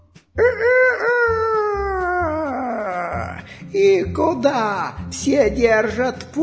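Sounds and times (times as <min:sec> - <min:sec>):
speech: 0:00.4 - 0:01.1, 0:03.7 - 0:06.4
rooster crowing: 0:00.4 - 0:02.5.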